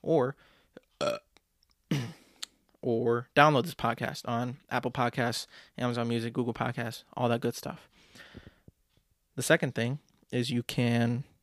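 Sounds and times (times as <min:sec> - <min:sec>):
speech: 0:00.0 - 0:01.2, 0:02.8 - 0:08.5, 0:09.4 - 0:11.3
loud voiced burp: 0:01.0 - 0:01.3.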